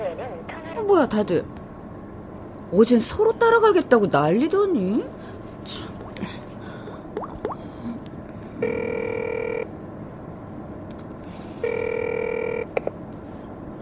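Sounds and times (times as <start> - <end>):
speech: 0.9 - 1.6, 2.7 - 6.4
telephone ringing with electronic tone: 8.6 - 9.7, 11.6 - 12.7.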